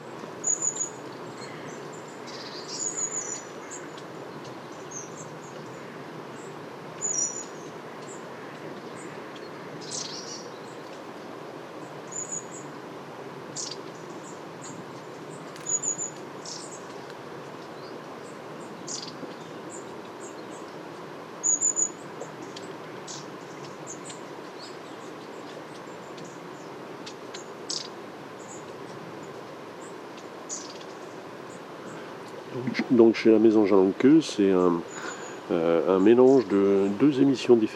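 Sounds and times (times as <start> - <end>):
long-tailed tits giving thin high calls and trilling bursts: 0.0 - 12.8, 13.5 - 37.7
low hiss: 0.0 - 37.7
speech: 32.8 - 34.9, 35.5 - 37.7.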